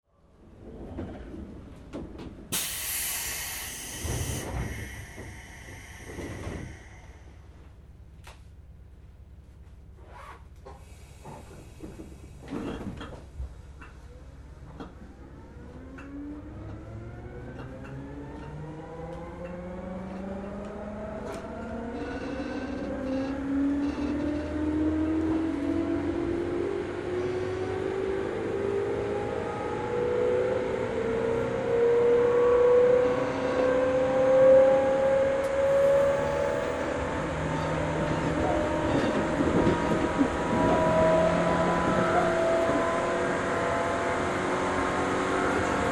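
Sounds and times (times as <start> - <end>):
Seibu 101N train: 0.1 - 45.9.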